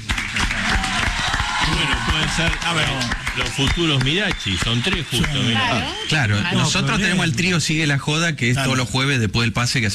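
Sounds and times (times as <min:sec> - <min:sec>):
studio audience applause for young comedians: 0:00.0 - 0:07.7
speech: 0:02.3 - 0:09.9.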